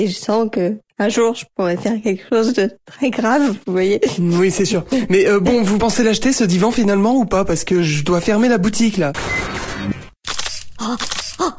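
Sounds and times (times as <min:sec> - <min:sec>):
speech: 0:00.0 - 0:09.9
camera shutter clicks: 0:09.5 - 0:11.5.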